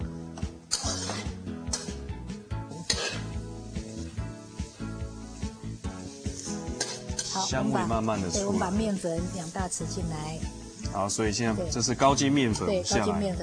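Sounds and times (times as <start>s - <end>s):
onion frying in butter over high heat: 0.1s - 13.4s
utensil stirring and scraping through frying onion: 0.7s - 2.0s, 2.9s - 9.8s
speech: 7.4s - 13.4s.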